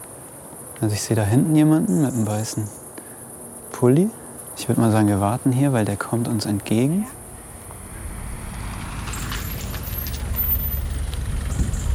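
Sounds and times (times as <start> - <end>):
outdoor noise: 0.0 - 11.9
speech: 0.8 - 2.8, 3.8 - 7.2
car pulling up and parking: 7.0 - 11.9.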